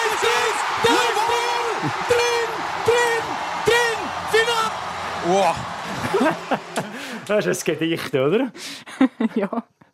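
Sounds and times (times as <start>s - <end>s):
man shouting excited drawn-out calls: 0.0s - 4.8s
stadium crowd roaring after a goal: 0.0s - 7.8s
speech: 0.8s - 1.1s, 1.8s - 2.3s, 5.3s - 6.7s, 7.3s - 9.8s
laughter: 0.9s - 2.6s, 5.6s - 7.5s, 8.9s - 9.8s.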